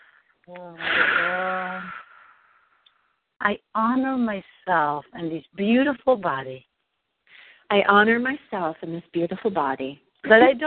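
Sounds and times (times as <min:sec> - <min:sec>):
deep wheezy breath drawn in: 0:00.0 - 0:02.8
speech: 0:00.5 - 0:01.1, 0:03.4 - 0:06.7, 0:07.7 - 0:10.6.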